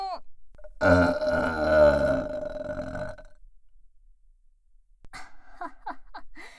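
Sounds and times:
loud croaky belch: 0.6 - 3.3
soft vocal sounds: 0.6 - 3.3
person groaning: 0.8 - 3.2.

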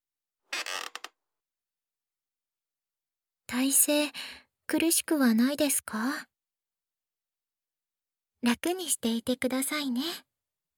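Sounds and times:
chair creaking as it is reclined: 0.5 - 1.2
speech: 3.5 - 6.3, 8.4 - 10.3.

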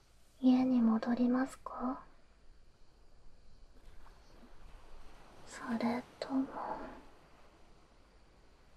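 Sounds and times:
speech: 0.4 - 2.1, 5.6 - 6.9
cold wind noise at a seaside beach: 2.3 - 8.7
soft continuous surf-like swells at a seaside beach: 3.2 - 8.7.

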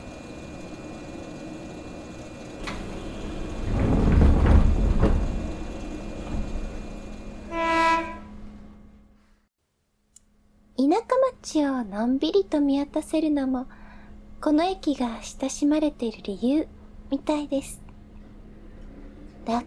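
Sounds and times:
single-car one-man train running on rails: 0.0 - 8.9
short bright train horn tone: 7.5 - 8.6
speech: 11.0 - 13.8, 14.4 - 17.8, 19.4 - 19.6.

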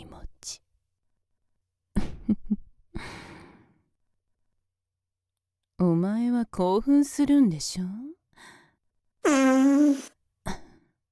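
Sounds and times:
speech: 5.8 - 8.5
loud buzzing fart: 9.2 - 10.1.

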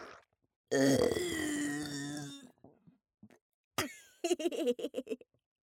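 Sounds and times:
long loud rumbling burp: 0.7 - 2.4
laughter: 4.2 - 5.2.

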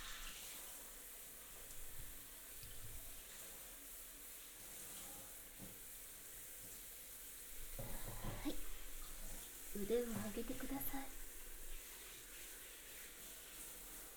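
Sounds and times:
running shower water used to rinse off oil: 0.0 - 14.1
speech: 9.8 - 11.2.

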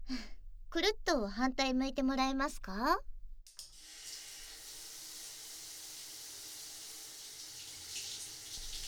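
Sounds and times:
speech: 0.1 - 3.1
shower spray water rinsing off soap foam: 3.5 - 8.8.

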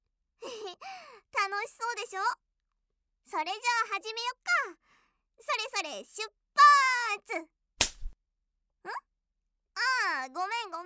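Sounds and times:
speech: 0.8 - 2.4, 3.3 - 4.8, 5.4 - 7.6, 8.8 - 9.1, 9.8 - 10.8
hand slapping skin like a whip: 7.8 - 8.2.

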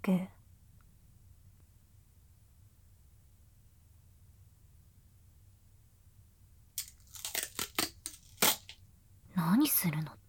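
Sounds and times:
speech: 0.0 - 0.4, 9.8 - 10.2
duct tape ripping off the roll: 6.8 - 8.8.

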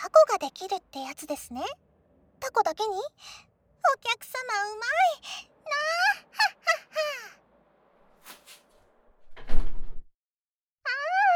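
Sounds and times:
speech: 0.1 - 7.4
door shutting with a solid thud: 9.2 - 10.1.

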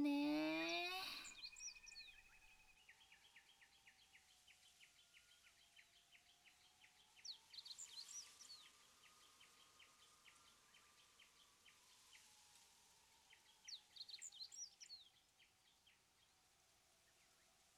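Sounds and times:
small birds chirping while camping: 0.0 - 8.8.

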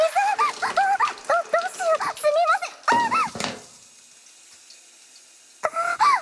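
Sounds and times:
shower water running: 0.0 - 6.2.

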